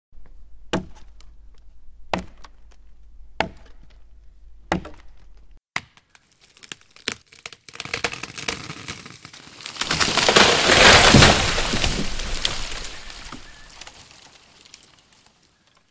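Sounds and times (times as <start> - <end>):
tree falling: 6.2 - 15.8.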